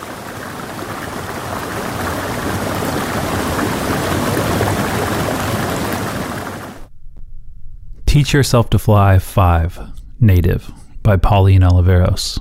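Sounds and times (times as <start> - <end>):
creek water rushing: 0.0 - 6.9
speech: 8.2 - 12.3.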